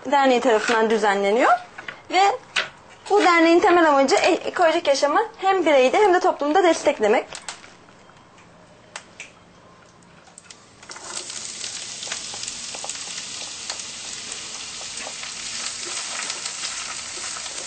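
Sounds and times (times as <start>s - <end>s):
speech: 0.1s - 2.5s, 3.1s - 7.4s
chopped onions sizzling in a frying pan: 10.6s - 17.6s.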